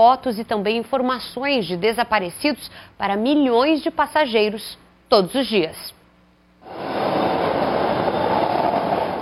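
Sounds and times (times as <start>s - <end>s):
speech: 0.0s - 6.0s
subway train running with rumbling roar: 6.6s - 9.2s.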